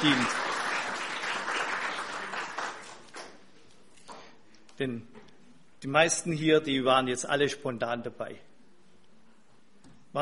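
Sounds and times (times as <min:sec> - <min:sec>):
speech: 0:00.0 - 0:00.4, 0:04.8 - 0:05.2, 0:05.8 - 0:08.5
audience applauding a music team: 0:00.0 - 0:03.4.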